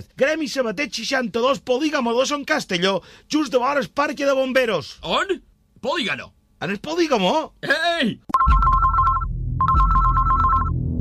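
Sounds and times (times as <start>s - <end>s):
speech: 0.0s - 8.6s
telephone ringing in electronic trills: 8.3s - 10.8s.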